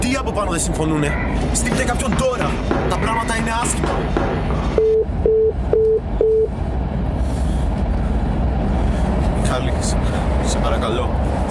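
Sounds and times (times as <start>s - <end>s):
steady low rumble: 0.0s - 11.5s
speech: 0.2s - 5.2s, 9.5s - 11.5s
electronic telephone busy tone beeps: 4.8s - 6.5s.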